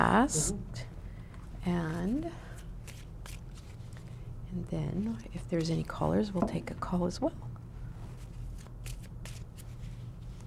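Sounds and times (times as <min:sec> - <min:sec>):
speech: 0:00.0 - 0:00.9, 0:01.6 - 0:02.5, 0:04.5 - 0:07.5
tarot cards being shuffled before a reading: 0:01.9 - 0:04.2, 0:08.2 - 0:10.4.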